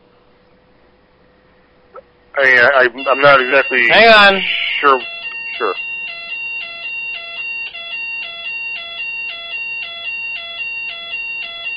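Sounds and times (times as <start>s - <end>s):
speech: 2.4s - 5.9s
electronic fire alarm beeping in a two-tone pattern during a system check: 3.0s - 11.7s.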